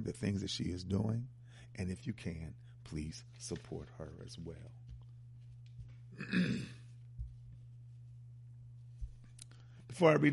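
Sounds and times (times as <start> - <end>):
speech: 0.0 - 4.8, 6.2 - 6.8, 10.0 - 10.3
steady low hum: 0.0 - 10.3
throat clearing: 6.2 - 6.9.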